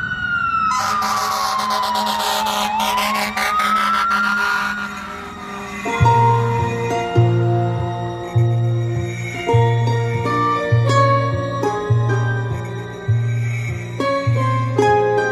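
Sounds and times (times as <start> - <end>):
fire engine siren wailing: 0.0 - 9.3
fire engine engines rumbling: 0.0 - 15.2
horn-like tone: 0.7 - 8.7.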